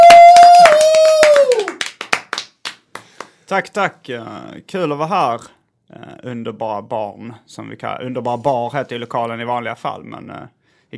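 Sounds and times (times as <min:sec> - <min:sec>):
audience applause: 0:00.0 - 0:03.1
speech: 0:03.5 - 0:10.9.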